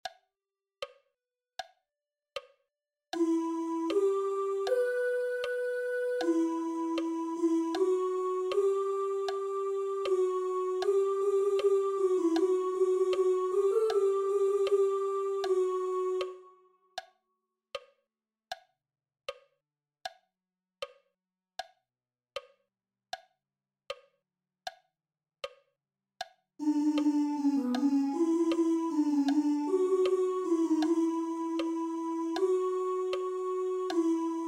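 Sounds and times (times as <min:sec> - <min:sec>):
alto voices singing: 0:03.2 - 0:16.6, 0:26.6 - 0:34.4.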